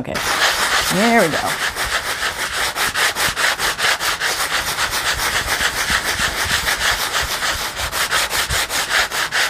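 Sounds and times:
speech: 0.0s - 1.8s
sandpaper rubbing across a slightly wet collage journal page: 0.1s - 9.4s.

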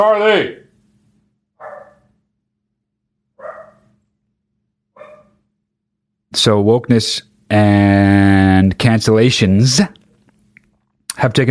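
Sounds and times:
speech: 0.0s - 0.6s, 6.3s - 10.0s, 11.2s - 11.4s
low steady hum: 0.0s - 11.4s
dog barking: 1.6s - 2.1s, 3.4s - 4.0s, 5.0s - 5.4s.

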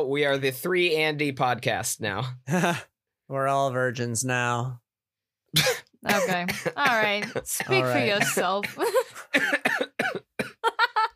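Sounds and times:
speech: 0.0s - 4.8s, 5.5s - 10.2s
voiced throaty coughs: 5.5s - 10.8s.

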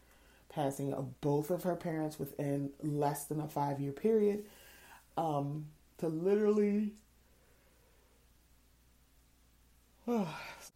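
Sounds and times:
speech: 0.5s - 4.6s, 5.2s - 7.0s, 10.1s - 10.6s
person yawning: 10.0s - 10.7s.

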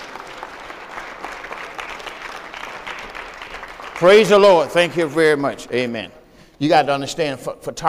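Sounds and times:
audience clapping hands: 0.0s - 6.3s
speech: 4.0s - 7.8s.

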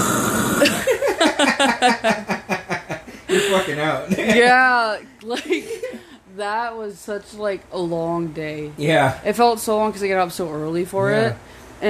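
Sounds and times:
person imitating snoring: 0.0s - 0.9s
laughter: 0.6s - 4.6s
speech: 1.8s - 2.4s, 3.5s - 5.8s, 6.4s - 11.8s.

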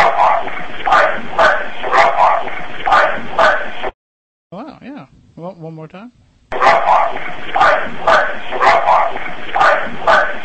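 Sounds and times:
dog barking: 0.0s - 3.8s, 6.5s - 10.4s.

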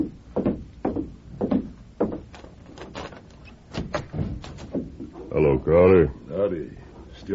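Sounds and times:
wooden clunks, rattles and creaks of a door: 0.0s - 5.3s
hotel room door being unlatched and opened: 2.0s - 4.8s
speech: 5.4s - 7.3s.

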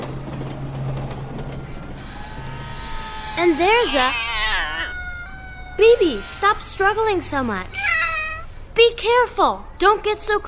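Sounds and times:
elevated commuter train rumbling past with rattling clanking wheels: 0.0s - 9.8s
faint high squeal: 1.3s - 7.2s
speech: 3.4s - 4.4s, 5.8s - 8.0s, 8.8s - 10.4s.

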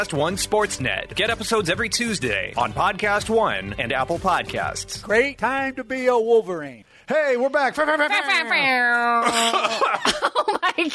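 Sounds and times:
speech: 0.0s - 10.9s
laughter: 7.7s - 10.9s
person choking with a strained drawn-out vocal sound: 9.2s - 10.1s.

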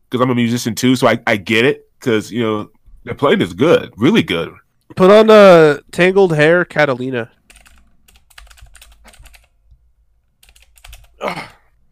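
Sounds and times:
speech: 0.1s - 7.4s, 11.2s - 11.5s
clicky mechanical keyboard typing: 7.5s - 9.6s, 10.4s - 11.2s.

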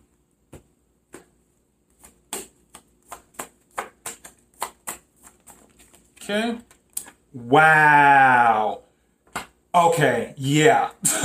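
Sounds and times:
tarot cards being shuffled and drawn: 1.1s - 7.2s
speech: 6.3s - 6.7s, 7.3s - 8.8s, 9.8s - 11.2s.

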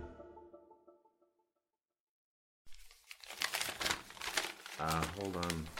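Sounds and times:
paper being crumpled and handled: 2.7s - 5.7s
person speaking: 4.6s - 5.7s.

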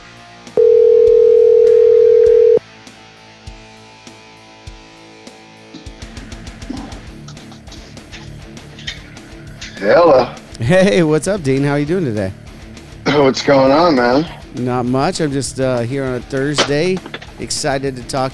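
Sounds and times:
quiet music: 0.0s - 18.3s
phone dial tone while placing a call: 0.6s - 2.6s
speech: 9.8s - 10.1s, 10.7s - 12.4s, 13.2s - 18.3s.

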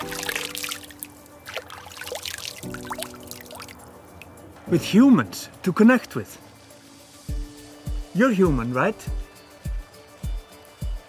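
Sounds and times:
water pouring and trickling: 0.0s - 4.5s
speech: 4.7s - 6.4s, 8.2s - 9.2s.

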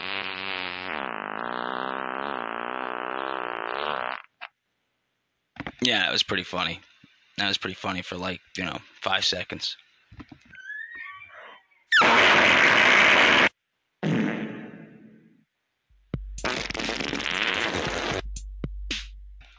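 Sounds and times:
fart sound effects: 0.0s - 4.5s, 11.9s - 15.2s, 16.4s - 18.3s
speech: 5.8s - 9.8s.

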